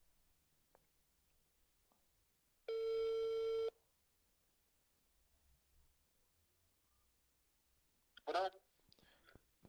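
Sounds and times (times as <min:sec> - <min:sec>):
telephone ringing while the caller waits for an answer: 0:02.7 - 0:03.7.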